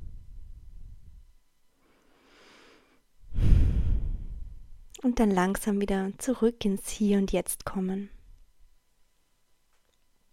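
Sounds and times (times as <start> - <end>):
deep breath in and out: 1.8 - 4.7
speech: 5.0 - 8.2.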